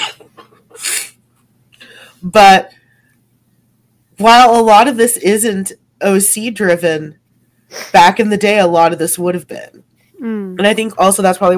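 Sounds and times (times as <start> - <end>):
person coughing: 0.0 - 1.1
speech: 2.2 - 2.8, 4.2 - 11.5.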